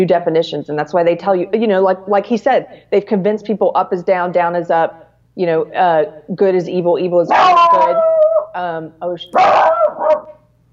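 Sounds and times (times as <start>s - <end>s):
speech: 0.0s - 10.4s
dog barking: 7.3s - 8.5s, 9.4s - 10.4s.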